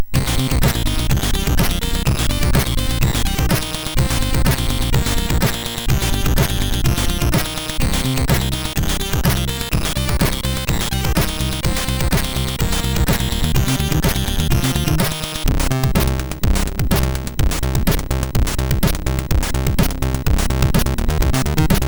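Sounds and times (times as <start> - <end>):
MOS6581 SID chip synthesizer: 0.0 - 21.8.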